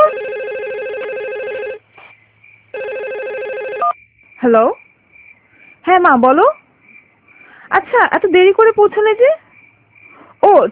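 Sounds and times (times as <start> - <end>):
mobile phone warbling electronic ringtone during a power cut: 0.0 - 1.8, 2.8 - 4.0
speech: 4.4 - 4.8, 5.9 - 6.6, 7.7 - 9.4, 10.4 - 10.6.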